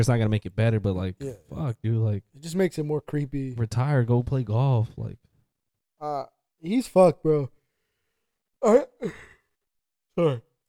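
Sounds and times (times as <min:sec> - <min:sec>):
speech: 0:00.0 - 0:05.2, 0:06.0 - 0:07.6, 0:08.6 - 0:09.3, 0:10.2 - 0:10.5
person yawning: 0:08.6 - 0:09.4, 0:10.2 - 0:10.4.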